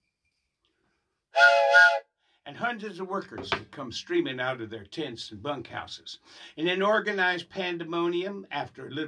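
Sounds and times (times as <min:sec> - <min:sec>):
steam locomotive whistle blasting at dawn at a railroad track-laying camp: 0:01.3 - 0:02.1
speech: 0:02.5 - 0:09.0.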